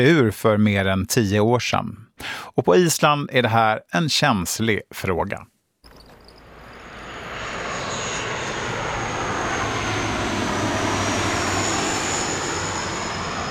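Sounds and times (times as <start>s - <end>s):
speech: 0.0s - 5.5s
domestic airliner engine roar coming in to land near central Reykjavik: 6.1s - 13.4s.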